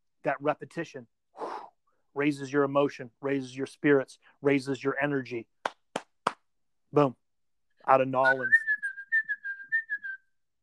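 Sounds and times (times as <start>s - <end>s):
speech: 0.2s - 1.2s, 2.2s - 5.6s, 6.9s - 7.2s, 7.9s - 8.6s
person whistling a short bright tune: 8.2s - 10.4s.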